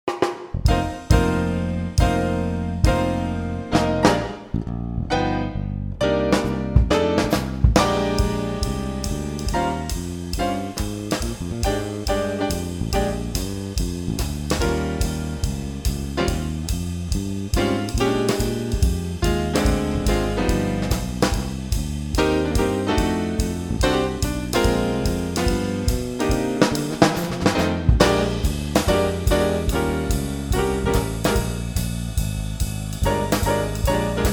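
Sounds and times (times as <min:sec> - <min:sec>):
B-flat blues improvisation etude: 0:00.1 - 0:34.3.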